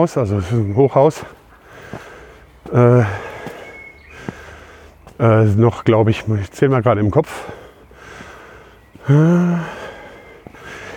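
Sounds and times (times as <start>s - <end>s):
speech: 0.0s - 2.1s, 2.7s - 3.3s, 5.2s - 7.6s, 9.1s - 9.8s
heavy panting while walking uphill: 1.2s - 5.1s, 7.3s - 10.9s.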